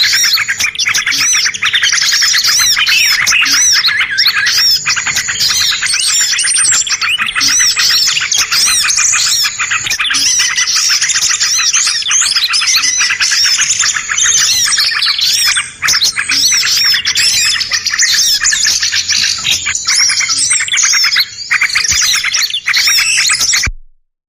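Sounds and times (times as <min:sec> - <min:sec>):
busy bird chorus of high chirps, squawks and twittering trills: 0:00.0 - 0:23.7.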